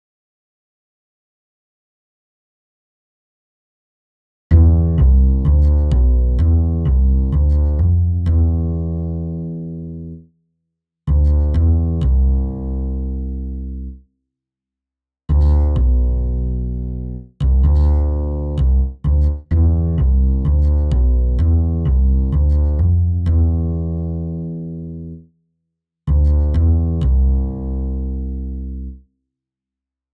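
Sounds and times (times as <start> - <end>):
bouncing bass: 4.5 - 10.2, 11.1 - 14.0, 15.3 - 25.2, 26.1 - 29.0.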